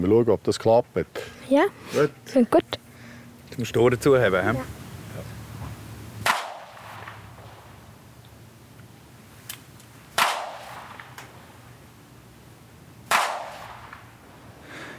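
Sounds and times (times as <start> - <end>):
speech: 0.0 - 2.8, 3.5 - 4.8
low hum: 0.0 - 14.9
blank pistol shots: 6.2 - 7.6, 10.1 - 11.4, 13.0 - 14.2.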